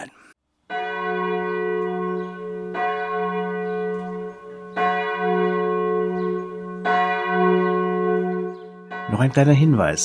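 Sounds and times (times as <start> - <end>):
church bell tolling in Hochstädten: 0.7 - 10.0
speech: 9.2 - 10.0.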